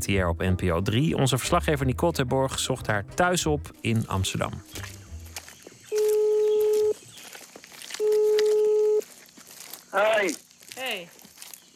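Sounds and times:
speech: 0.0s - 5.0s, 9.9s - 11.2s
telephone ringing with two steady electronic tones: 5.9s - 7.0s, 8.0s - 9.0s.

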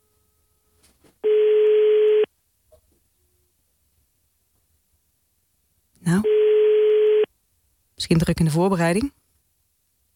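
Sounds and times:
telephone ringing tone while a call is placed: 1.2s - 2.3s, 6.2s - 7.3s
speech: 8.0s - 9.2s.

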